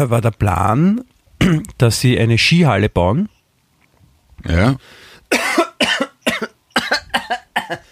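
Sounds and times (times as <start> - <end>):
speech: 0.0 - 3.4, 4.4 - 5.4
person coughing from choking: 1.4 - 1.7, 5.3 - 7.9
person gasping: 4.5 - 5.3, 7.8 - 7.9.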